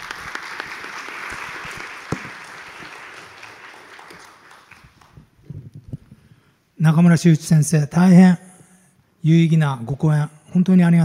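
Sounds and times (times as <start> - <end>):
large audience applauding after a lecture: 0.0 - 5.4
speech: 6.8 - 8.4, 9.2 - 11.0.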